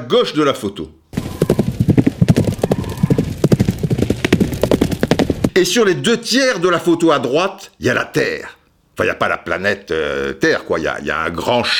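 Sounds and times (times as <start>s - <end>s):
speech: 0.1s - 1.0s, 5.6s - 11.7s
herd of horses galloping: 1.1s - 5.6s.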